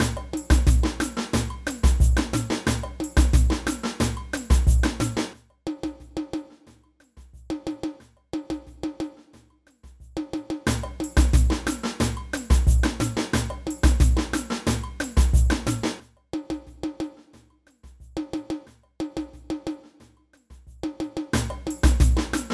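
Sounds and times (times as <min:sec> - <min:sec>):
samba band playing: 0:00.0 - 0:05.4, 0:10.6 - 0:16.0, 0:21.4 - 0:22.5
repinique drum in samba band: 0:00.0 - 0:22.5.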